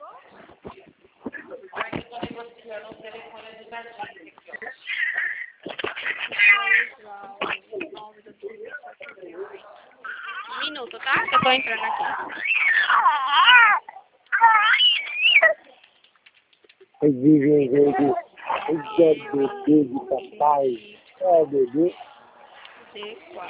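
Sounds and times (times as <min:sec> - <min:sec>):
speech: 0:02.8 - 0:04.7, 0:11.1 - 0:12.6, 0:17.0 - 0:22.0
baby crying: 0:10.0 - 0:15.6, 0:17.6 - 0:20.8.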